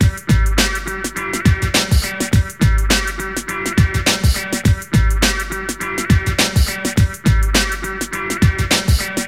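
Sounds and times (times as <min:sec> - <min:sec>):
nu skool breaks loop: 0:00.0 - 0:09.2.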